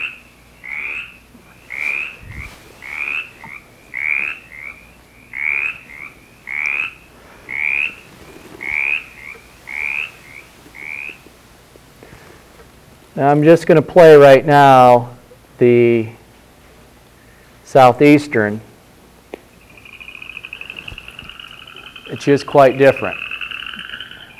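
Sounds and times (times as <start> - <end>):
mountain chorus frog calling: 0.0 - 11.3, 19.5 - 24.3
speech: 13.2 - 16.2, 17.7 - 18.7, 22.2 - 23.2.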